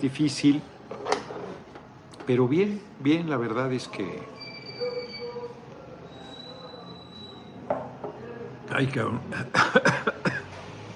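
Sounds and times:
speech: 0:00.0 - 0:00.8, 0:02.3 - 0:04.4, 0:08.8 - 0:09.7
person coughing after choking on water: 0:09.5 - 0:10.6.

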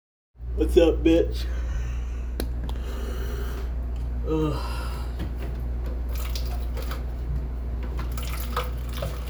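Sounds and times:
constant low hum: 0:00.4 - 0:09.2
speech: 0:00.6 - 0:01.6, 0:04.3 - 0:04.8
clean water pouring into a cup from a sink tap: 0:06.1 - 0:07.0, 0:08.0 - 0:09.2.

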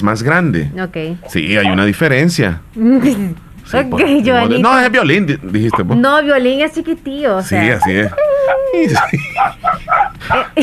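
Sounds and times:
speech: 0:00.0 - 0:10.6
dog giving a high whining yelp: 0:01.2 - 0:01.9, 0:07.5 - 0:10.6
dog barking sharply: 0:07.6 - 0:10.6
laughter: 0:07.6 - 0:10.6.

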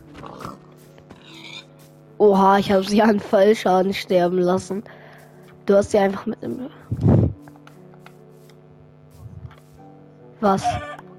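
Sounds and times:
steady electronic hum: 0:00.0 - 0:11.1
pig in a video game oinking in nasal grunts: 0:00.2 - 0:01.7, 0:10.6 - 0:11.0
speech: 0:02.2 - 0:05.0, 0:05.6 - 0:07.0, 0:10.4 - 0:10.9.

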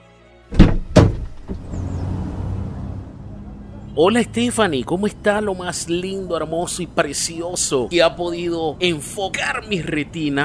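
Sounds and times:
car door shutting as someone gets out of a car: 0:00.5 - 0:02.0
faint knock: 0:00.6 - 0:01.7
steady low rumble of the vehicle and surroundings: 0:00.6 - 0:05.6
speech: 0:04.0 - 0:10.4.

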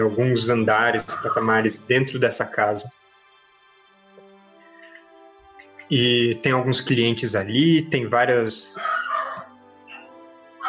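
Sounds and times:
speech: 0:00.0 - 0:03.0, 0:05.9 - 0:09.0
dogs barking: 0:01.1 - 0:01.6, 0:08.8 - 0:10.0
dog yelping: 0:08.8 - 0:09.5.

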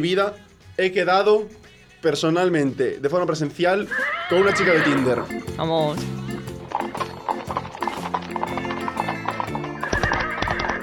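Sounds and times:
speech: 0:00.0 - 0:06.2
horse hooves pounding in a galloping rhythm: 0:03.8 - 0:10.8
horse letting out a shrill neigh: 0:03.8 - 0:10.8.

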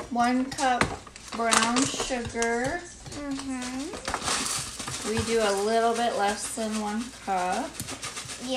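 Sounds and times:
speech: 0:00.1 - 0:04.3, 0:05.1 - 0:07.9
whisk clinking and scraping against a bowl stirring ingredients: 0:01.8 - 0:08.5.

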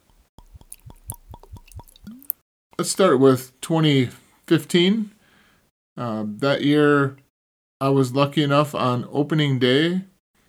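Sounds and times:
Buffalo Trace bourbon glugging from a bottle into a glass: 0:00.0 - 0:02.4
speech: 0:02.8 - 0:05.2, 0:06.0 - 0:07.2, 0:07.8 - 0:10.1.

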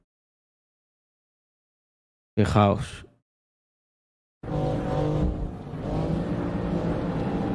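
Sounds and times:
speech: 0:02.4 - 0:03.1
M2 Competition sports car engine revving and accelerating: 0:04.4 - 0:07.5.

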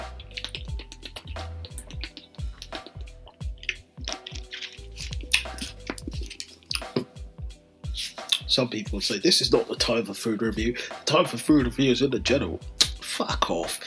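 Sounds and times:
person sipping pineapple and passion fruit juice: 0:00.1 - 0:07.2
speech: 0:08.6 - 0:12.8, 0:13.5 - 0:13.8.

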